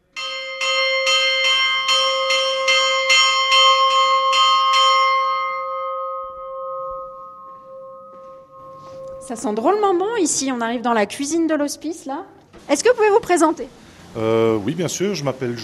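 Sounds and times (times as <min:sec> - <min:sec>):
church bell ringing for noon at the mountain hospice on the Great St Bernard Pass: 0:00.0 - 0:12.1
speech: 0:09.3 - 0:15.6.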